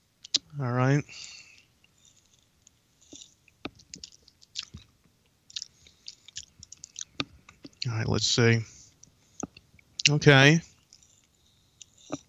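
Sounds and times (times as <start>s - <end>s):
speech: 0.6s - 1.4s, 7.9s - 8.8s, 10.1s - 10.7s
sipping and lip smacks tasting a canned citrus alcoholic drink: 3.1s - 4.9s, 5.5s - 7.8s.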